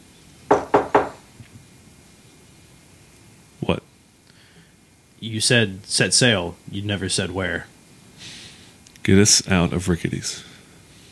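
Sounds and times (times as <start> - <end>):
knocking on a wooden door: 0.5 - 1.2
speech: 5.2 - 8.3, 9.0 - 10.5.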